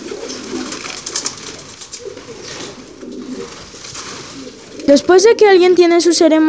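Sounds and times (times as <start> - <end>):
pigeon wing flutters: 0.0 - 5.6
pigeons cooing: 0.0 - 6.2
faint hiss of outdoor ambience: 0.0 - 6.4
speech: 4.9 - 6.4.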